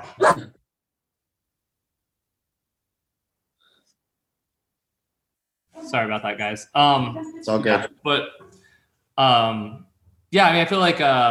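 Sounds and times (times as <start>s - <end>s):
dog barking: 0.0s - 0.6s
speech: 5.8s - 8.6s, 9.2s - 11.2s.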